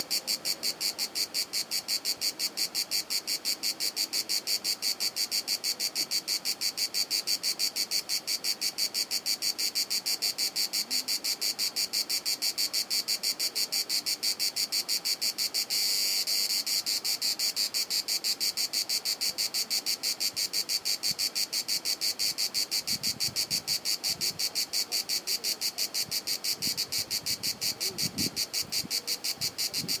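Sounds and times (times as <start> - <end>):
French cicada: 0.0 - 29.9.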